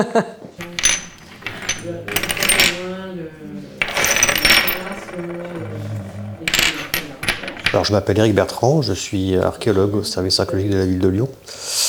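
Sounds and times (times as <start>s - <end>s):
laughter: 0.0s - 0.5s
speech: 0.0s - 0.8s, 1.8s - 3.8s, 5.1s - 6.7s, 7.7s - 11.8s
well-fired fine ceramic sherds clinking together: 0.6s - 10.0s.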